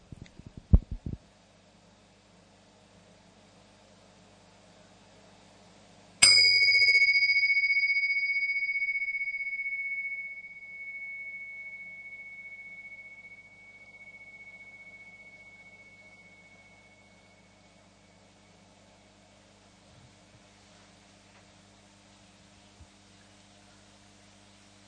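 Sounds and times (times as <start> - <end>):
gong struck and ringing: 6.2 - 18.0.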